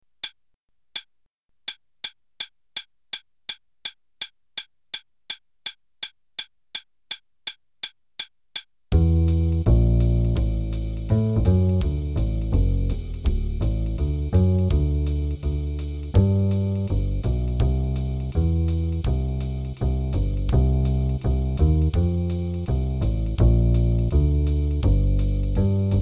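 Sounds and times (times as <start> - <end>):
jazz bass solo: 8.9 - 26.0
jazz improvisation play-along band playing: 9.0 - 26.0.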